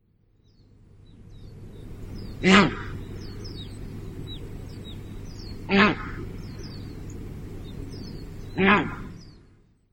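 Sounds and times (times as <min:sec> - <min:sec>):
swan goose calling on Tobishima in Yamagata Prefecture: 0:01.8 - 0:09.4.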